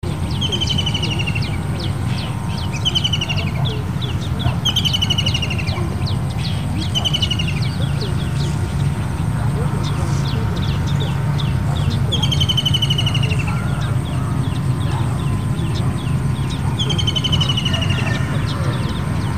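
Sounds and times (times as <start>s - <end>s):
ruddy kingfisher calling: 0.0s - 19.3s.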